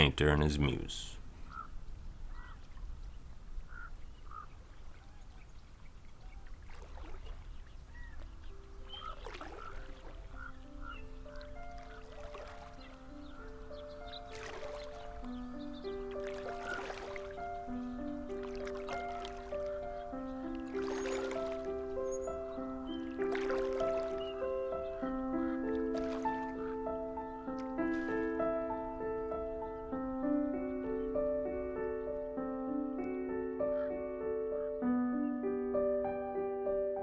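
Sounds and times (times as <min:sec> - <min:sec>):
speech: 0:00.0 - 0:01.2
gentle sustained music: 0:00.0 - 0:37.0
rowboat oars dipping in calm pond water: 0:03.7 - 0:29.8.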